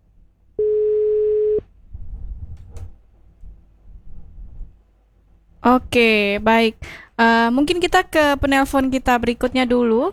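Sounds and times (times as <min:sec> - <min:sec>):
low rumbling noise: 0:00.0 - 0:10.1
telephone tone after a call is cut off: 0:00.6 - 0:01.6
speech: 0:05.6 - 0:10.1.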